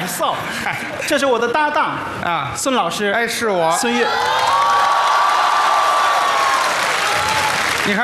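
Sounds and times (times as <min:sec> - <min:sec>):
speech: 0:00.2 - 0:04.8, 0:07.9 - 0:08.0
dense applause from a large audience: 0:03.8 - 0:08.0.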